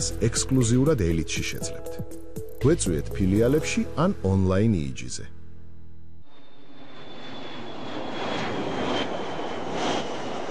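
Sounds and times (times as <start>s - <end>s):
speech: 0.0s - 5.4s
airplane engine roaring overhead: 3.1s - 10.5s
thin high airplane engine whine: 5.3s - 10.5s.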